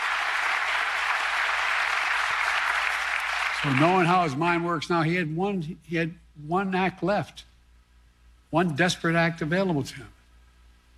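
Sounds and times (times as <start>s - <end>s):
large audience applauding: 0.0s - 4.6s
speech: 3.6s - 7.5s, 8.5s - 10.2s.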